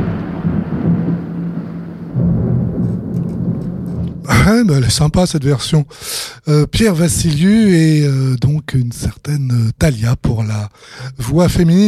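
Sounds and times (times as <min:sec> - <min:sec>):
steady dense rain: 0:00.0 - 0:04.4
deep low rumble: 0:00.0 - 0:04.7
speech: 0:04.5 - 0:11.8.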